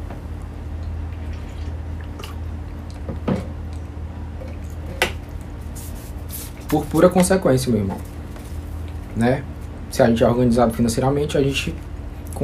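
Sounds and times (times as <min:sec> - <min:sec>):
steady low room hum: 0:00.0 - 0:12.4
person drinking water with soft sips or swallows: 0:00.8 - 0:05.0
speech: 0:06.7 - 0:08.2, 0:09.2 - 0:12.4.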